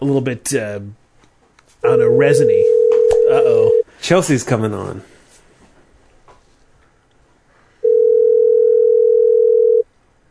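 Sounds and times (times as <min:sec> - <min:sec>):
speech: 0:00.0 - 0:01.0, 0:01.8 - 0:05.1
steady electronic telephone ringing tone: 0:01.9 - 0:03.8, 0:07.8 - 0:09.8.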